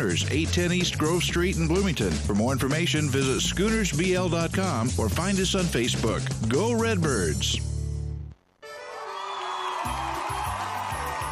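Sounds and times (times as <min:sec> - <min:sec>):
speech: 0:00.0 - 0:07.7
big crowd roaring and cheering: 0:08.8 - 0:11.2.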